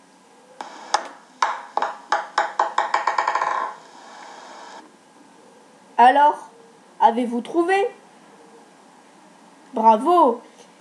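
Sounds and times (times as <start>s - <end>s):
table tennis ball bouncing on a hard surface: 1.4s - 3.8s
speech: 6.0s - 8.0s, 9.8s - 10.5s.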